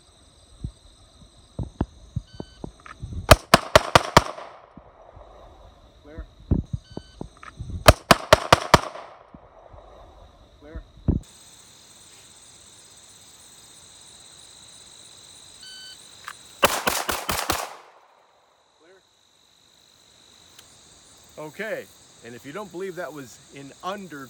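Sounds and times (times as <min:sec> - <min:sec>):
gun handling clicks: 0:03.3 - 0:04.6, 0:07.9 - 0:09.2
rapid pistol shots fired from the draw at a shooting range: 0:03.3 - 0:05.2, 0:07.9 - 0:09.8, 0:16.6 - 0:18.1
speech: 0:21.4 - 0:24.2.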